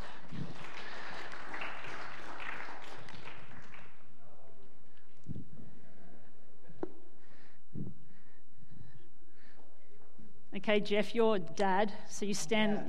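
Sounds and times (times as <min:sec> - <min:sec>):
audience applause for volunteers: 0:00.0 - 0:04.0
speech: 0:10.6 - 0:12.8.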